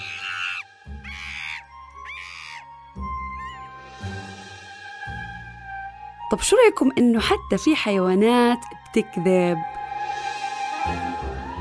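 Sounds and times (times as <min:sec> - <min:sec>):
monkey screaming harshly: 0:00.0 - 0:02.7
speech: 0:06.3 - 0:09.7.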